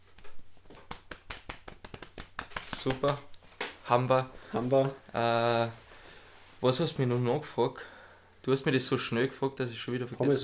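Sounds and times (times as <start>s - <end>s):
hands patting someone on the shoulder: 0.0s - 5.0s
speech: 2.8s - 3.3s, 3.9s - 5.8s, 6.6s - 10.4s.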